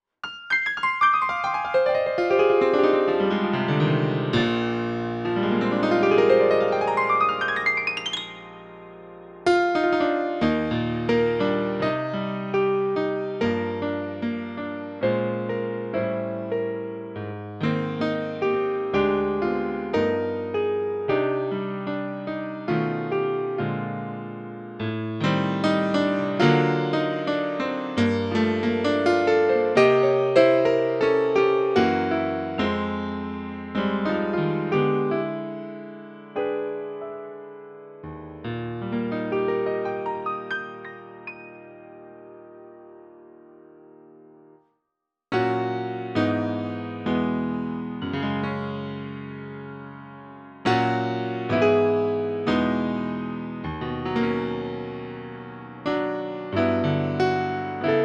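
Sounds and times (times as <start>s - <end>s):
acoustic concert grand piano: 0.2s - 44.6s, 45.3s - 58.0s.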